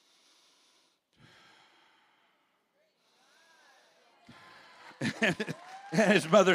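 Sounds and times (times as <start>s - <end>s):
voice imitating strained labored breathing: 0.0s - 4.8s
laughter: 4.2s - 6.5s.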